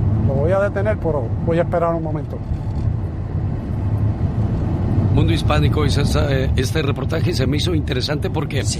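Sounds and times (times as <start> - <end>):
continuous engine and tire drone: 0.0 - 8.7
road traffic with cars passing: 0.0 - 8.7
speech: 0.5 - 2.9, 5.2 - 8.7.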